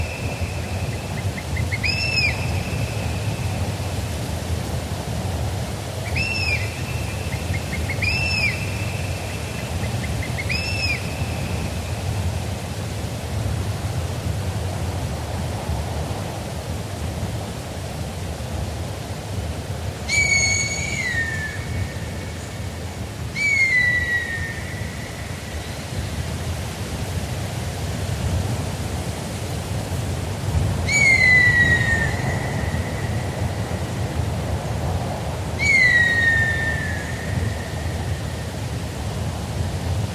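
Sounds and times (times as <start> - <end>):
birds of prey calling with whistles and screams: 0.0 - 3.6, 6.1 - 11.6, 20.1 - 22.5, 23.4 - 25.8, 30.9 - 33.8, 35.6 - 37.9
steady wind rushing through forest trees: 0.0 - 40.1.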